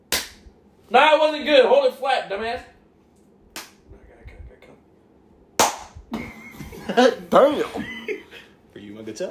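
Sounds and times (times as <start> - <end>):
hand slapping raw pork belly: 0.1 - 0.4, 5.6 - 6.0
speech: 0.9 - 2.7, 6.9 - 8.0, 9.0 - 9.2.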